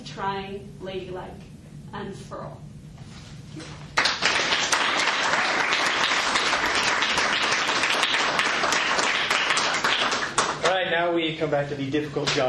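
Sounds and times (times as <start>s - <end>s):
speech: 0.2s - 4.0s, 10.9s - 12.4s
crowd applauding after a poetry performance: 4.0s - 10.8s.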